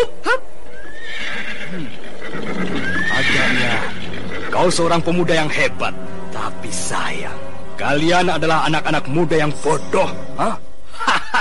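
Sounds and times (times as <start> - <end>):
soft mixed sound: 0.0 - 11.4
horse whinnying as riders mount up: 0.7 - 4.8
speech: 4.6 - 10.6
laughter: 10.9 - 11.4.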